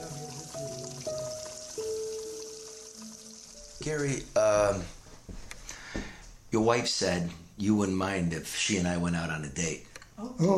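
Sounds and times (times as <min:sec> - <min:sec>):
coffee dripping into a cup or pot in a kitchen: 0:00.0 - 0:04.2
soft hiss: 0:00.0 - 0:10.5
speech: 0:03.8 - 0:05.0, 0:06.5 - 0:10.5.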